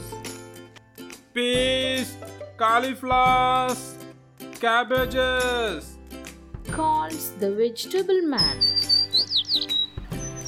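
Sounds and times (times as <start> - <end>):
speech: 1.4 - 4.0, 4.6 - 5.9, 6.8 - 9.8
sparrows chirping: 8.4 - 10.4.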